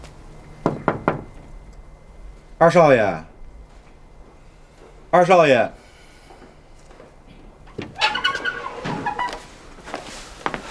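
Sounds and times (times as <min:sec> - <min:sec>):
knocking on a door: 0:00.6 - 0:01.3
speech: 0:02.6 - 0:03.3, 0:05.1 - 0:05.8.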